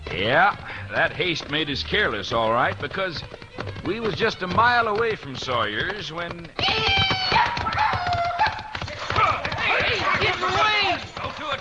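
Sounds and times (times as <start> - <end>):
horse hooves galloping: 0.0 - 11.6
speech: 0.1 - 6.9
excited voices calling out: 6.6 - 11.0.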